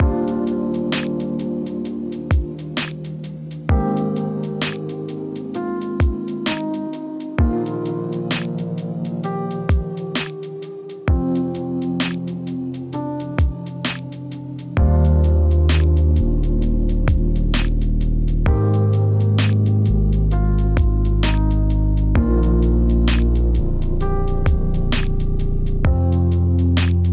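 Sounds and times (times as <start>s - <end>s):
lo-fi music: 0.0s - 27.1s.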